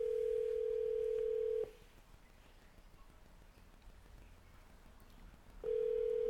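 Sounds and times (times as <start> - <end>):
telephone dial tone while placing a call: 0.0 - 1.7, 5.6 - 6.2.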